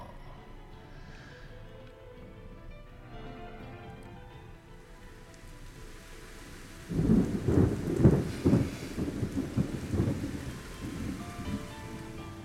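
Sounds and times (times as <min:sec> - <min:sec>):
steady rainfall pattering: 0:01.8 - 0:12.4
deep rolling thunder: 0:03.1 - 0:12.4.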